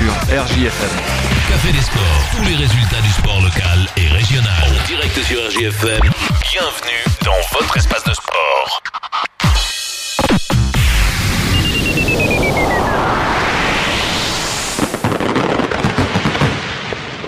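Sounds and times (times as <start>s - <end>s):
speech: 0.3s - 9.7s
long rising firework whistle: 10.8s - 15.2s
firework bangs: 13.4s - 17.2s.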